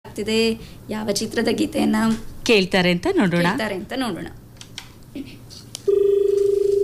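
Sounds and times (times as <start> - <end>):
faint noise: 0.1 - 6.8
speech: 0.2 - 4.4, 5.2 - 6.0
steady mid-pitched telephone tone from a dropped call: 5.9 - 6.8.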